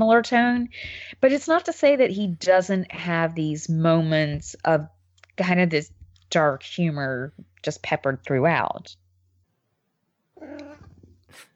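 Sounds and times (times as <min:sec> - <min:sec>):
speech: 0:00.0 - 0:09.0
cat meowing: 0:10.4 - 0:11.5.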